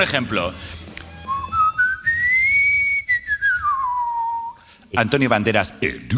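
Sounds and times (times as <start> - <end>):
speech: 0.0 - 0.8, 4.9 - 6.1
person whistling a short tune: 1.2 - 4.6.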